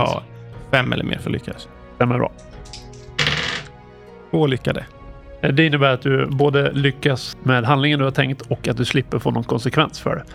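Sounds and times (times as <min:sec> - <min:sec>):
speech: 0:00.0 - 0:02.8, 0:04.3 - 0:10.3
dice rolled across a hard surface: 0:02.7 - 0:03.7.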